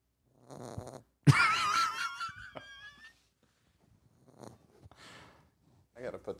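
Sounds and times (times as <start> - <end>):
female dog snoring: 0.3 - 1.1, 4.2 - 4.9
speech: 6.0 - 6.3.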